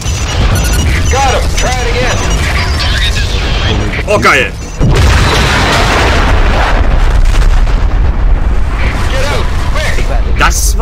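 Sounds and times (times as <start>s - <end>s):
rumbling video game explosion with crackling debris: 0.0s - 10.8s
speech: 4.1s - 5.0s, 10.4s - 10.8s.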